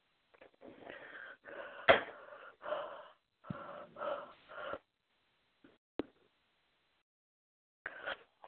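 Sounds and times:
heavy raspy breathing into a phone mic: 0.8 - 4.9.

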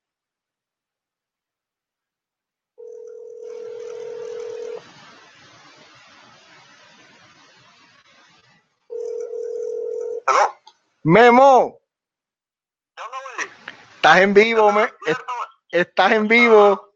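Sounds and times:
ringback tone of an outgoing telephone call: 2.8 - 4.8, 8.9 - 10.2
faint hiss: 2.8 - 11.4, 13.0 - 16.9
speech: 10.3 - 11.8, 14.0 - 16.9.

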